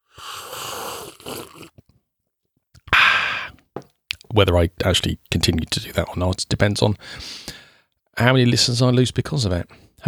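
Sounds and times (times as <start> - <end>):
long airy slurps of coffee: 0.1 - 1.8
speech: 4.4 - 7.6, 8.2 - 10.0.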